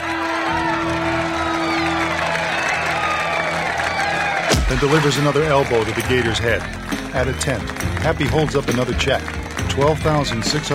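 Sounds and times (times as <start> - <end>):
large crowd at a golf course cheering and whooping: 0.0 - 7.4
speech: 4.7 - 10.7.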